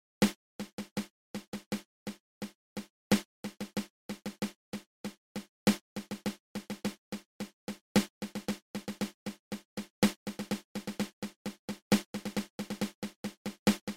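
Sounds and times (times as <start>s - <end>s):
drum drag paradiddle: 0.2s - 13.9s.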